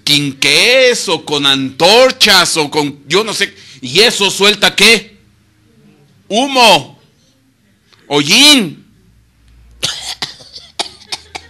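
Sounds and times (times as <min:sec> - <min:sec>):
speech: 0:00.1 - 0:05.1, 0:06.3 - 0:06.9, 0:08.1 - 0:08.8
person coughing harshly and raspily: 0:09.8 - 0:11.4.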